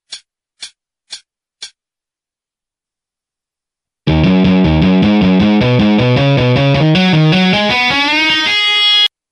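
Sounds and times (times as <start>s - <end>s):
solo guitar: 4.1s - 9.1s.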